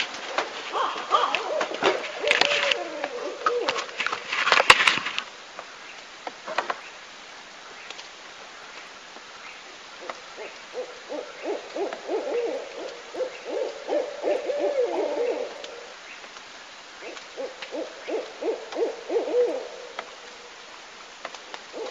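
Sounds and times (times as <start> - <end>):
quiet hiss: 0.0 - 21.8
owl hooting from a played-back recording: 0.7 - 4.0, 9.4 - 20.6, 21.4 - 21.8.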